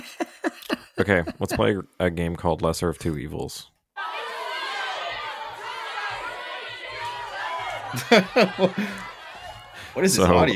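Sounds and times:
laughter: 0:00.0 - 0:02.0, 0:04.0 - 0:10.5
speech: 0:01.0 - 0:03.8, 0:07.9 - 0:09.1, 0:10.0 - 0:10.5
game show crowd booing: 0:04.0 - 0:10.5
loud sharp vocal outbursts: 0:04.0 - 0:10.5.

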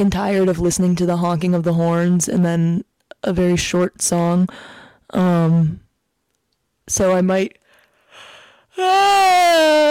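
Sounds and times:
speech: 0:00.0 - 0:05.8, 0:06.9 - 0:07.6, 0:08.8 - 0:09.8
person's voiced yawn: 0:08.7 - 0:09.8.

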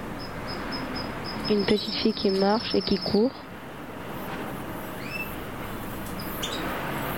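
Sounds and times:
dense outdoor noise: 0:00.0 - 0:07.1
faint bird chirps: 0:00.2 - 0:03.3, 0:05.0 - 0:05.4, 0:06.2 - 0:06.7
speech: 0:01.5 - 0:03.5.

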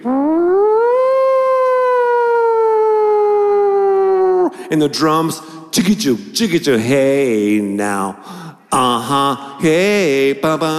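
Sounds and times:
siren wail opening a funk song: 0:00.0 - 0:04.5
speech: 0:04.7 - 0:10.7.

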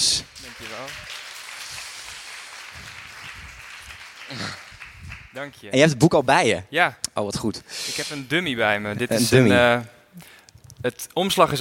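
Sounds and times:
speech: 0:00.0 - 0:01.2, 0:04.3 - 0:04.6, 0:05.4 - 0:11.5
audience applause: 0:00.0 - 0:05.5.

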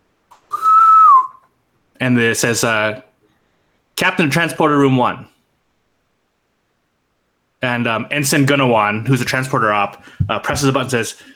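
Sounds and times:
bright electronic intercom whistle: 0:00.5 - 0:01.5
speech: 0:02.0 - 0:03.1, 0:04.0 - 0:05.3, 0:07.6 - 0:11.3.

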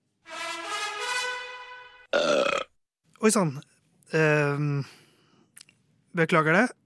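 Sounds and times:
long loud resonant burp: 0:02.1 - 0:02.8
speech: 0:03.2 - 0:05.0, 0:06.1 - 0:06.8.

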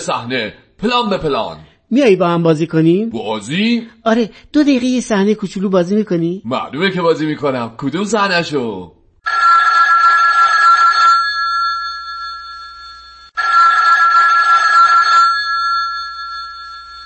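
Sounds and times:
speech: 0:00.0 - 0:09.5
telephone ringing: 0:09.2 - 0:17.0.

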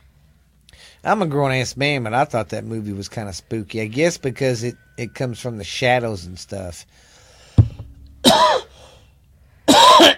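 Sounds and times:
speech: 0:01.0 - 0:07.1
thump against microphone: 0:07.6 - 0:08.1
person coughing: 0:08.2 - 0:08.8, 0:09.7 - 0:10.1.

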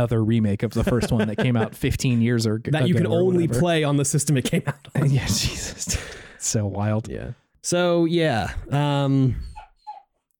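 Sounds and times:
speech: 0:00.0 - 0:09.5
laughter: 0:00.6 - 0:06.2
dog whining: 0:09.3 - 0:10.2.

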